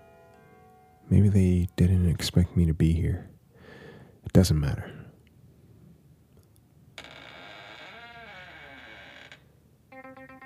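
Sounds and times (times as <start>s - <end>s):
speech: 1.1s - 3.3s, 4.3s - 5.0s
back door creaking open: 7.0s - 9.5s.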